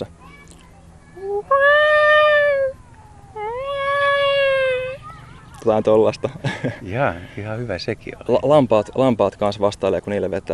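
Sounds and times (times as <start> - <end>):
person imitating a cat meow in high falsetto: 1.2 - 5.0
speech: 5.6 - 10.5
laughter: 6.3 - 7.0.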